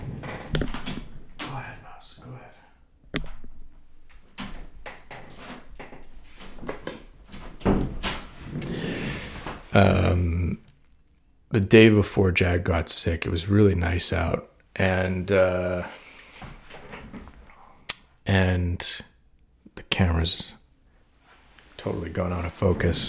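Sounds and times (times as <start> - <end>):
door being opened with clunks, knocks and scraping handling noises: 0.0 - 1.6, 4.2 - 8.8
speech: 9.8 - 10.6, 11.5 - 16.6, 18.3 - 19.1, 19.9 - 20.6, 21.8 - 23.0.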